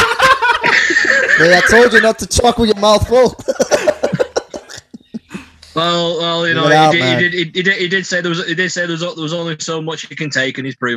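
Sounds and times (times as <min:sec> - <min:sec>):
laughter: 0:00.0 - 0:07.9
speech: 0:01.4 - 0:03.6, 0:05.8 - 0:10.9
person coughing harshly: 0:03.3 - 0:05.6.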